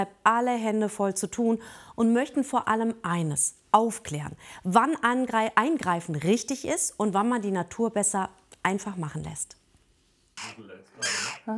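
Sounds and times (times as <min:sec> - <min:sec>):
speech: 0:00.0 - 0:09.6, 0:10.4 - 0:11.5
hungry jackdaw chicks calling noisily: 0:10.4 - 0:11.5.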